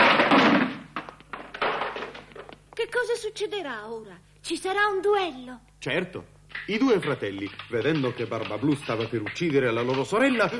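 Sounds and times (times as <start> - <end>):
heavy wooden door forced open giving way with a crash: 0.0 - 2.4
speech: 3.2 - 10.5.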